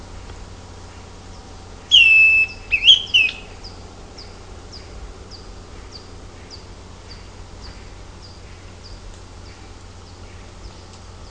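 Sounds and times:
Greenish schiffornis Schiffornis virescens whistled song: 1.9 - 10.9.

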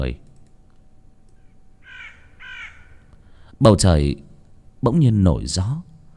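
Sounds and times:
speech: 0.0 - 0.3, 3.6 - 5.9
low steady hum: 0.0 - 6.1
crow cawing in a graveyard: 1.8 - 3.1.

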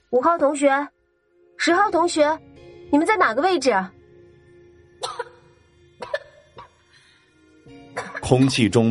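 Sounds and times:
speech: 0.1 - 1.0, 1.6 - 4.0, 8.3 - 8.8
person coughing in dusty air: 5.0 - 6.8, 8.0 - 8.6.

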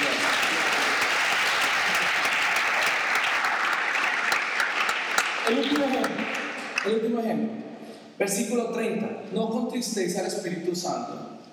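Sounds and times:
church congregation applauding during a sermon: 0.0 - 7.1
speech: 5.5 - 6.2, 6.8 - 11.5.

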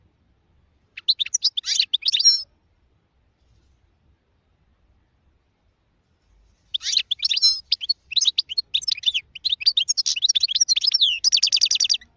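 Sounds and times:
European goldfinch twittering song ending in rapid trill: 1.0 - 2.4, 6.7 - 12.1.

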